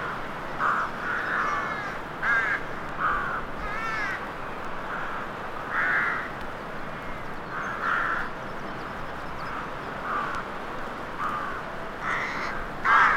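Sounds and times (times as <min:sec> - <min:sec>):
constant hissing noise: 0:00.0 - 0:13.1
crow giving hoarse caws: 0:00.1 - 0:04.2, 0:04.9 - 0:06.3, 0:07.0 - 0:08.3, 0:10.0 - 0:10.5, 0:11.2 - 0:13.1.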